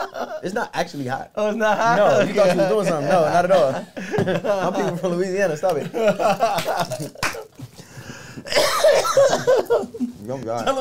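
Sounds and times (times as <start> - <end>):
laughter: 0.0 - 0.8, 1.4 - 7.8, 8.5 - 10.8
speech: 0.2 - 7.4, 8.5 - 10.8
person coughing and hacking in a rough strained fit: 8.4 - 9.6.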